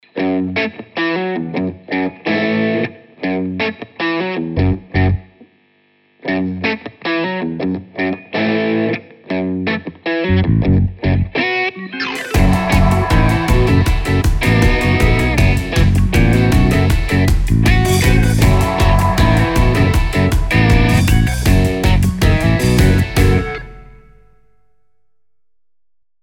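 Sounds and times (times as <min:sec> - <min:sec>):
guitar riff: 0:00.0 - 0:05.5, 0:06.2 - 0:24.6.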